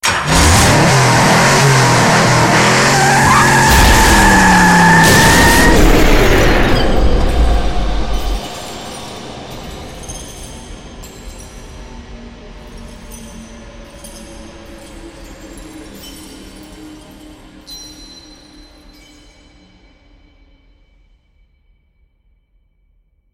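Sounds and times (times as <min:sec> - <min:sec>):
racecar exit: 0:00.0 - 0:10.6.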